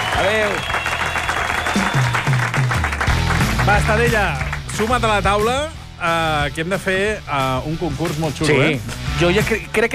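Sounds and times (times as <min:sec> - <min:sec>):
studio audience applause on a television game-show set: 0:00.0 - 0:05.2
speech: 0:00.2 - 0:00.9, 0:03.7 - 0:09.9.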